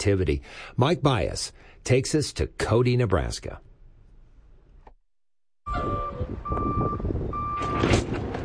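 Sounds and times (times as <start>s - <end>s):
speech: 0.0s - 3.7s
delivery truck reversing beeps at a grocery store: 5.7s - 7.9s.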